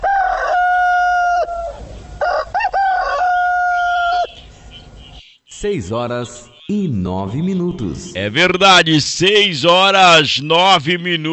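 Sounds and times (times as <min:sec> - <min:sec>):
rooster crowing: 0:00.0 - 0:04.4
speech: 0:05.6 - 0:11.3.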